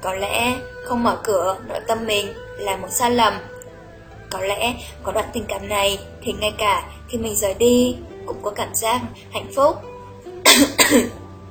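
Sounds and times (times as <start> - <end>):
speech: 0.0 - 3.6, 4.3 - 9.9, 10.5 - 11.2
dry rasping coughs: 10.5 - 11.2.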